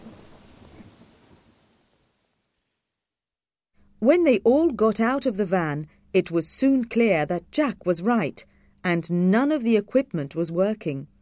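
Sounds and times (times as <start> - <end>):
rolling thunder: 0.0 - 2.1
steady rain hissing: 0.0 - 2.9
speech: 4.0 - 11.1.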